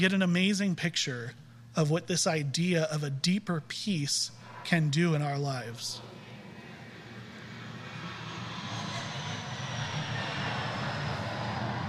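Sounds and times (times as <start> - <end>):
speech: 0.0 - 6.1
airplane engine droning overhead: 3.9 - 11.8.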